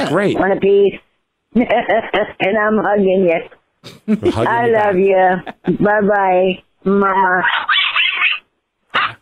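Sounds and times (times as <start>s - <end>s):
speech: 0.0s - 7.7s
laughter: 3.9s - 5.8s
dog barking: 7.4s - 9.2s.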